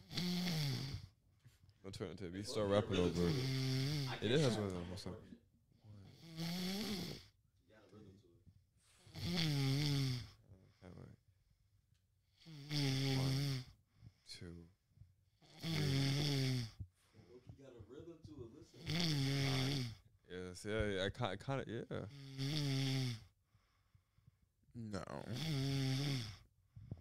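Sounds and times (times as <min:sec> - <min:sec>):
man snoring loudly with rattling inhales: 0:00.0 - 0:01.1, 0:02.6 - 0:04.7, 0:06.0 - 0:07.3, 0:09.1 - 0:10.4, 0:12.4 - 0:13.7, 0:15.4 - 0:16.8, 0:18.7 - 0:20.0, 0:22.0 - 0:23.3, 0:24.9 - 0:26.4
speech: 0:01.8 - 0:05.5, 0:21.2 - 0:23.2
quiet breaths: 0:02.7 - 0:11.3, 0:12.4 - 0:20.1, 0:21.7 - 0:26.9.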